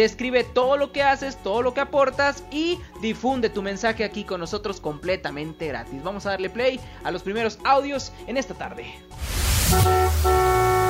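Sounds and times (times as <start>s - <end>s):
speech: 0.0s - 10.2s
traffic noise: 9.4s - 10.8s
car horn honking: 9.6s - 10.8s.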